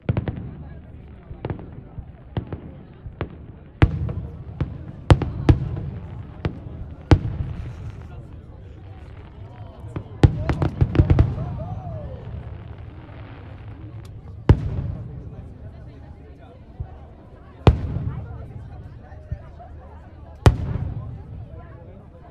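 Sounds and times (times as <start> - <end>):
fireworks: 0.0 - 22.2.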